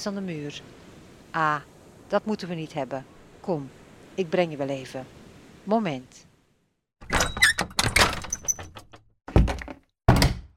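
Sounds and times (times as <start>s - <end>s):
speech: 0.0s - 6.3s
heavy gate door scraping and squeaking shut: 7.0s - 9.0s.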